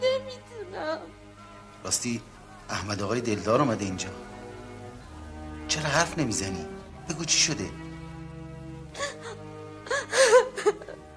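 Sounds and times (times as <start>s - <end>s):
speech: 1.8s - 4.3s, 5.8s - 7.8s
person crying in broken sobs with gasping breaths and moans: 9.0s - 11.1s.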